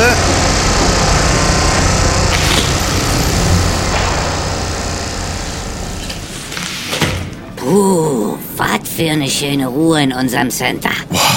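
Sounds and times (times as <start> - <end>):
construction site machinery rumbling roar: 0.0 - 7.6
speech: 9.0 - 11.3.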